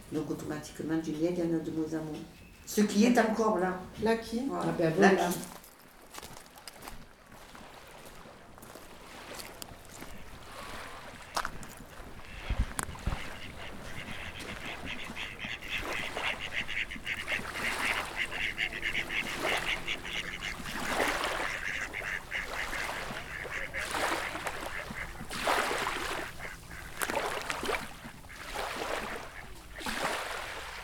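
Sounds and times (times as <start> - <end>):
water birds calling on a lakeshore with quacking and honking: 0.0 - 5.5, 7.2 - 30.8
speech: 0.1 - 5.6.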